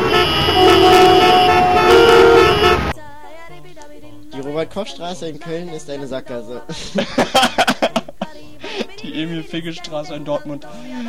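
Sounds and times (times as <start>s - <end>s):
car horns honking: 0.0s - 3.0s
traffic engine rumble: 0.0s - 3.0s
speech: 4.7s - 7.9s, 9.0s - 11.0s
laughter: 6.7s - 9.0s.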